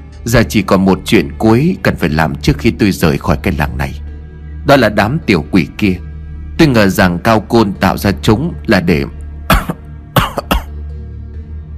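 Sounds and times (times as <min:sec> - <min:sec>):
speech: 0:00.2 - 0:04.0, 0:04.7 - 0:09.2
man coughing harshly while trying to speak: 0:09.5 - 0:10.8.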